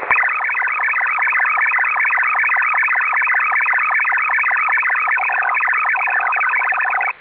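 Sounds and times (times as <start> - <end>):
automatic link establishment radio signal tones: 0.0 - 7.2.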